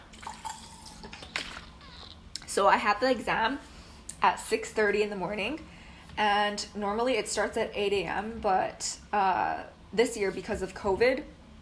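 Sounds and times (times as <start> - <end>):
person drinking water: 0.1 - 2.2
speech: 2.6 - 11.4.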